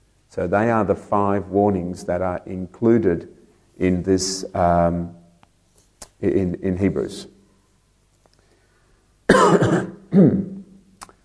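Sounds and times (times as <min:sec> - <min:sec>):
speech: 0:00.3 - 0:05.2, 0:06.2 - 0:07.3, 0:09.7 - 0:10.5
person coughing and spluttering from a cold: 0:09.3 - 0:10.6.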